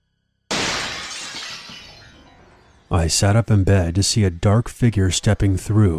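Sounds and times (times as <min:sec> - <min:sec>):
window glass shattering: 0:00.5 - 0:02.9
speech: 0:02.9 - 0:05.9.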